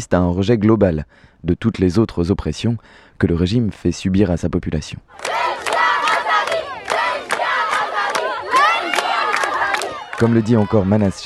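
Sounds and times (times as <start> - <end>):
speech: 0.0 - 5.7, 10.2 - 11.2
loud crowd chanting a slogan outdoors: 5.1 - 11.2.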